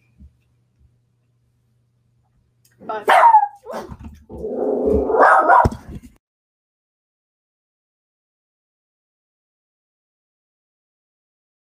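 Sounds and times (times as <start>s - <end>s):
speech: 2.8s - 5.2s
dog barking: 3.0s - 4.0s, 4.9s - 5.8s.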